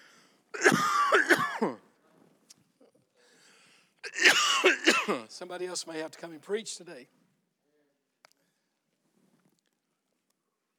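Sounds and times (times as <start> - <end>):
harsh raspy hacking coughing: 0.6 - 1.8, 4.0 - 5.3
speech: 5.1 - 7.2.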